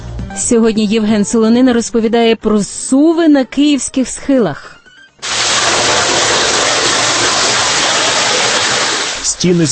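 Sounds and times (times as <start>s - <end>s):
speech: 0.5s - 5.4s, 9.4s - 9.7s
water rushing in an underground drainage tunnel: 5.2s - 9.3s.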